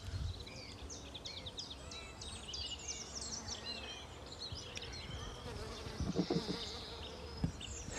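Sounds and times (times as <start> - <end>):
birds chirping and twittering: 0.0 - 7.9
many bees buzzing in a blossoming plum tree: 5.2 - 7.9.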